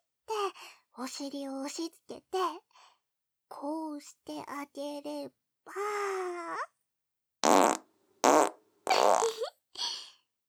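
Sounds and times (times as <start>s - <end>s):
speech: 1.0s - 2.9s, 3.5s - 6.8s
raspy buzzing farts: 7.4s - 9.4s.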